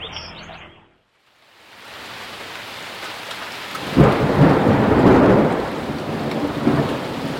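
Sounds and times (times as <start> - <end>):
heavy rain during a thunderstorm: 1.2 - 7.3
thunderclap from a thunderstorm passing over a house in Redmond in the Northwest: 3.7 - 7.3.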